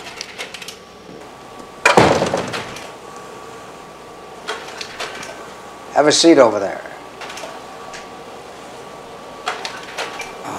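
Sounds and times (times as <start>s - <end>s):
door shutting with a solid thud: 1.8s - 2.8s
speech: 6.0s - 6.8s.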